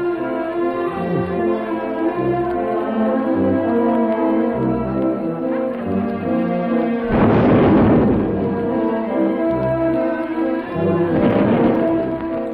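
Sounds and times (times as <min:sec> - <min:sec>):
police brass band playing: 0:00.0 - 0:12.5
heavy artillery salute blasts: 0:07.1 - 0:09.0, 0:10.9 - 0:12.5.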